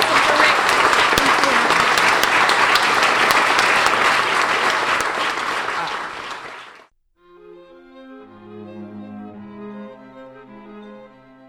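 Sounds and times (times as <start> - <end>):
loud dense audience applause: 0.0 - 6.9
gentle music: 7.2 - 11.4.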